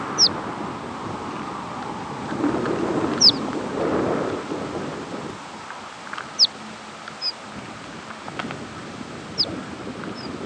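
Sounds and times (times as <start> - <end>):
steady low rumble of wind or engine noise: 0.1 - 6.8
horned lark calls: 0.2 - 0.4, 3.2 - 3.4, 6.3 - 7.4, 9.3 - 9.5, 10.1 - 10.3.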